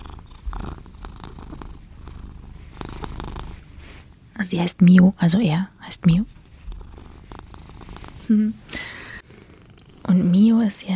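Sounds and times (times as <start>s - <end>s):
seven-year-old male cat purring against a person: 0.0s - 4.1s, 6.1s - 10.6s
speech: 4.4s - 6.4s, 8.3s - 8.7s, 10.1s - 10.9s.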